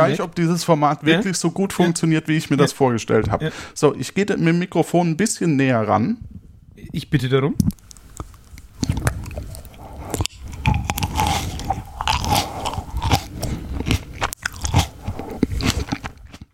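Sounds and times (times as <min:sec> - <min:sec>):
speech: 0:00.0 - 0:07.9
biting and chewing a snack tomato: 0:07.7 - 0:16.5.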